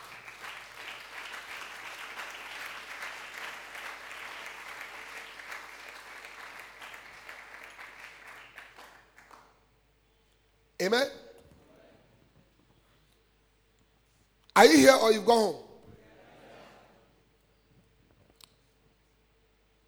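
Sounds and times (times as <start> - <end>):
church congregation clapping hands in praise: 0.0 - 9.6, 10.8 - 11.2, 14.6 - 15.7
speech: 10.8 - 11.2, 14.6 - 15.6.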